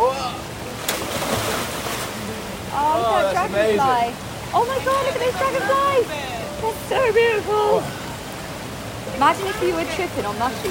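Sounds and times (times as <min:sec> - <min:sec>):
river water sloshing and rushing: 0:00.0 - 0:10.6
person jumping backwards into river splash: 0:00.8 - 0:02.2
speech: 0:03.4 - 0:08.0, 0:09.2 - 0:10.6.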